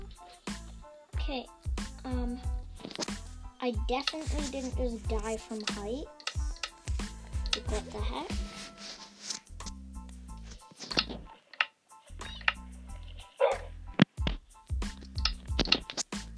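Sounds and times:
steady low music: 0:00.0 - 0:16.3
speech: 0:01.3 - 0:06.2, 0:07.6 - 0:08.6
clicking sounds: 0:03.9 - 0:04.6, 0:05.5 - 0:06.8, 0:09.3 - 0:14.4, 0:15.0 - 0:16.2
dog barking: 0:13.4 - 0:13.7.

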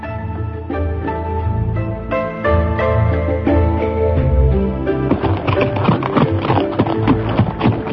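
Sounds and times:
music: 0:00.0 - 0:07.9
horse galloping with hooves clip-clopping: 0:05.0 - 0:07.9.

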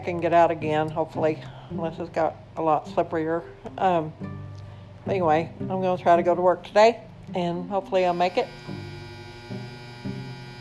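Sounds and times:
speech: 0:00.0 - 0:04.4, 0:05.0 - 0:08.8
clothes dryer with clothes inside humming: 0:07.9 - 0:10.5.

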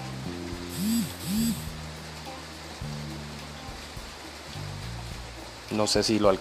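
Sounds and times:
soft hiss of falling rain: 0:00.0 - 0:06.3
low humming tonal sounds: 0:00.3 - 0:01.8
speech: 0:05.7 - 0:06.3.

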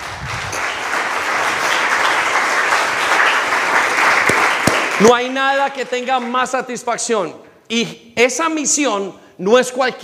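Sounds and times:
audience applause: 0:00.0 - 0:06.6
speech: 0:05.0 - 0:10.0.

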